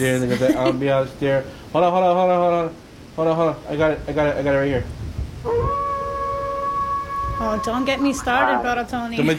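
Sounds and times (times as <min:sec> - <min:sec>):
speech: 0:00.0 - 0:05.0, 0:07.4 - 0:09.3
wolf howling: 0:05.5 - 0:08.9.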